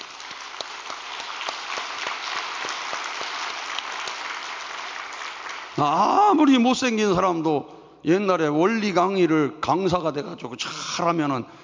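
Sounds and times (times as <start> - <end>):
applause from a sizable audience: 0.0 - 5.9
speech: 5.8 - 11.6.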